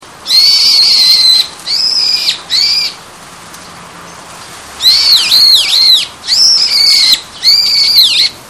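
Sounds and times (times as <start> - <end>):
brown-eared bulbul calling: 0.2 - 3.0, 4.8 - 8.4.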